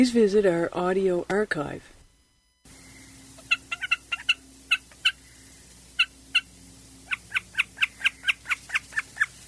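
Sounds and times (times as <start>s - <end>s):
speech: 0.0s - 2.0s
faint low hum: 0.0s - 9.4s
common snipe calling: 2.7s - 9.4s.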